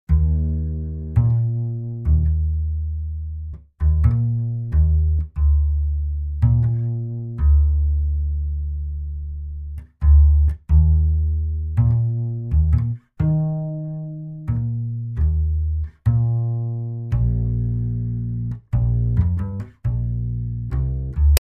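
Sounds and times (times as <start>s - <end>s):
double bass: 0.0s - 21.4s.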